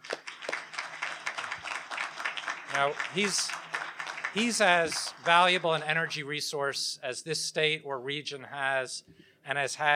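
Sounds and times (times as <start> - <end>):
audience applauding: 0.0 - 6.3
speech: 2.8 - 3.6, 4.4 - 9.9.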